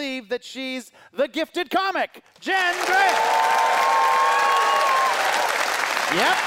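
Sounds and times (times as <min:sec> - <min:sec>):
speech: 0:00.2 - 0:04.0, 0:06.1 - 0:06.4
audience applauding: 0:02.5 - 0:06.4.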